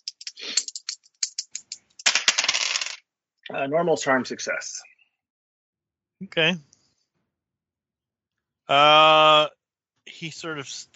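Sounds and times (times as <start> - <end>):
dice clattering across a hard tabletop: 0.0 - 3.0
speech: 3.5 - 4.9, 6.2 - 6.7, 8.7 - 10.9.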